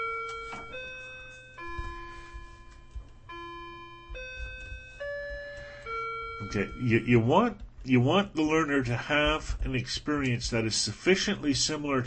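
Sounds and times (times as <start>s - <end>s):
clock chiming a slow melody of bell tones: 0.0s - 7.5s
faint low hum: 0.0s - 12.0s
speech: 6.5s - 12.0s.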